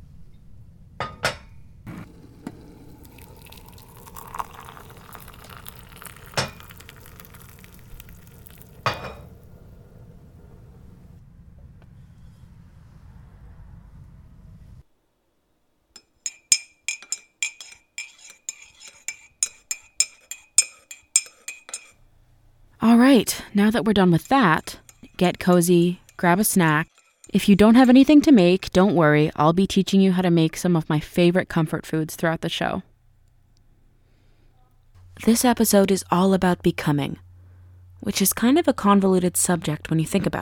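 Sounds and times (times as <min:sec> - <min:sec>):
spoon clinking while stirring a mug: 0:03.0 - 0:09.3, 0:16.0 - 0:22.0, 0:24.2 - 0:27.4
speech: 0:23.0 - 0:32.9, 0:35.2 - 0:37.2, 0:38.0 - 0:40.4.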